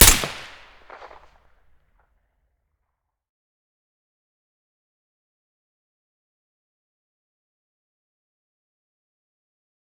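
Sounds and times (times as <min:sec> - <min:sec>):
SVD rifle shot with silencer: 0:00.0 - 0:01.2.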